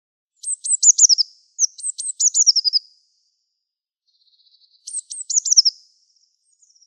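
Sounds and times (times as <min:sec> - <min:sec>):
Eurasian blue tit scolding calls descending into a rapid trill: 0:00.4 - 0:02.8, 0:04.9 - 0:05.8.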